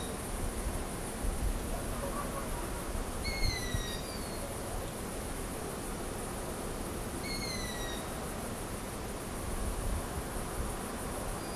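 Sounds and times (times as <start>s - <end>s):
constant hissing background noise: 0.0s - 11.5s
owl giving a thin descending whistled call: 3.2s - 4.4s, 7.2s - 8.1s.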